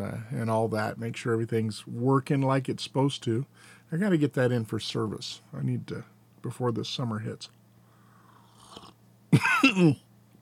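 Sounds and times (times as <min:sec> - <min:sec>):
speech: 0:00.0 - 0:07.6, 0:08.8 - 0:10.1
person coughing after coffee went down the wrong pipe: 0:09.4 - 0:10.0.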